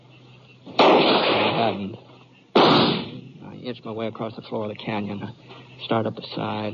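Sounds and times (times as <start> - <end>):
bullet striking a rock: 0.7 - 1.9, 2.6 - 3.2
gunshot in a rocky canyon: 0.7 - 1.9, 2.6 - 3.2
loud abrupt burst: 0.7 - 1.9, 2.5 - 3.2
speech: 1.6 - 2.1, 3.6 - 6.7.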